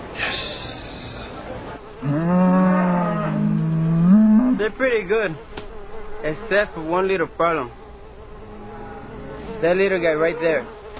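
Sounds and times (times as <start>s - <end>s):
dairy cow mooing: 2.0s - 4.7s, 8.2s - 9.7s
speech: 4.6s - 5.6s, 6.2s - 7.8s, 9.6s - 10.8s.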